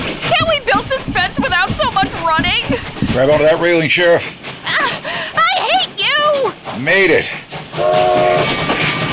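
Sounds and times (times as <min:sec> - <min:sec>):
moving train rumbling on the rails: 0:00.0 - 0:09.1
speech: 0:01.9 - 0:04.8, 0:06.8 - 0:08.6
whistle-like tone: 0:07.8 - 0:08.6.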